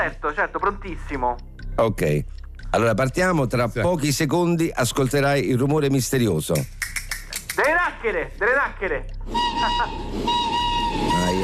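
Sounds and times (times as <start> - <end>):
speech: 0.0 - 7.0, 7.6 - 11.4
train whistle: 9.3 - 11.4.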